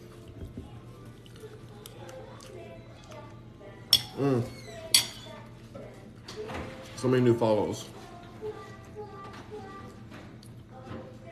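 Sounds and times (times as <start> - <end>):
spoon clinking against a plate while eating avocado toast: 3.9 - 4.2, 4.9 - 5.3
speech: 4.2 - 4.6, 7.0 - 8.0.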